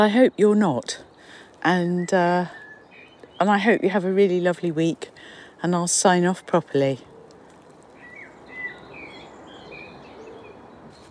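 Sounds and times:
speech: 0:00.0 - 0:02.6, 0:03.4 - 0:07.1
soft birdsong with warbling phrases: 0:00.0 - 0:11.0
steady hiss of outdoor noise: 0:00.0 - 0:11.0.

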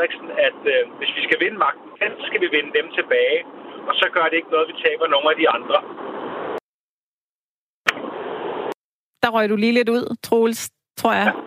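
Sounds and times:
speech: 0:00.0 - 0:06.0, 0:09.2 - 0:11.4
car engine and road rumble through a phone line: 0:00.0 - 0:06.6, 0:07.9 - 0:08.7.

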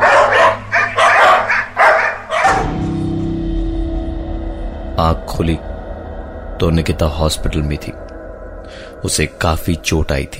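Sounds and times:
dogs barking around a person stepping out of a car: 0:00.0 - 0:02.8
steady low rumble: 0:02.5 - 0:10.3
speech: 0:06.6 - 0:08.1, 0:09.0 - 0:10.3.

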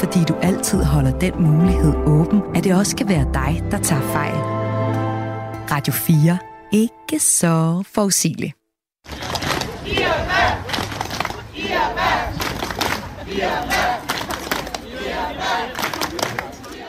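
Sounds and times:
speech: 0:00.0 - 0:04.6, 0:05.7 - 0:09.2
large crowd of protesters chanting and shouting outside a supermarket: 0:09.1 - 0:16.8.

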